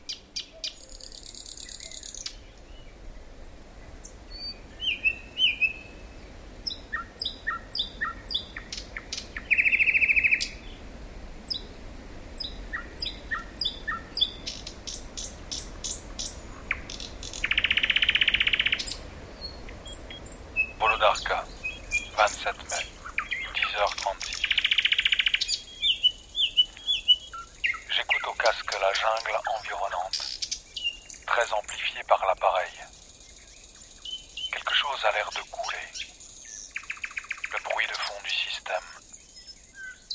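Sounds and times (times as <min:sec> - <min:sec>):
several birds singing and chirping outdoors: 0:00.0 - 0:03.2, 0:03.8 - 0:10.8, 0:12.4 - 0:40.1
faint hush: 0:20.8 - 0:24.5, 0:27.9 - 0:30.3, 0:34.5 - 0:36.1, 0:37.5 - 0:39.0.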